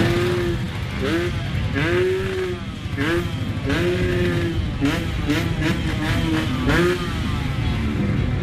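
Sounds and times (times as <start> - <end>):
small scooter engine revving: 0.0 - 8.4
steady rumble of surrounding street traffic: 0.0 - 8.4.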